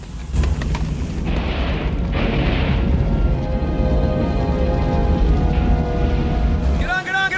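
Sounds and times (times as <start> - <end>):
deep roar of flame and rumble from burning oil tanker: 0.3 - 6.8
oil tanker explosion blast: 0.7 - 3.8.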